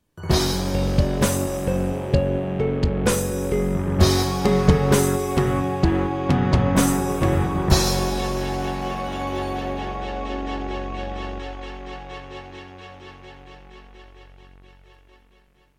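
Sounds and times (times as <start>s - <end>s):
game intro music: 0.2s - 15.6s.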